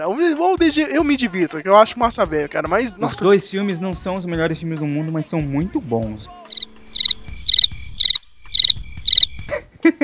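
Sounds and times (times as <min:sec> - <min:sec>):
speech: 0:00.0 - 0:06.4
cricket chirping in high-pitched trills: 0:06.5 - 0:09.5.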